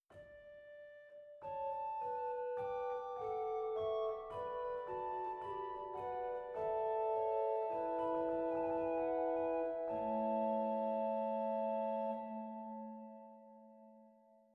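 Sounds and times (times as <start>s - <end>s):
pipe organ Roerfluit 4 stop of the Borstwerk in Zwolle: 1.7s - 13.2s.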